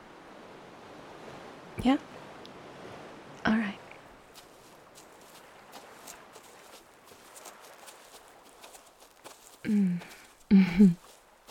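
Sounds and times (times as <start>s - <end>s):
speech: 1.8s - 2.2s
footsteps crunching outdoors at night near the ocean: 4.2s - 11.4s.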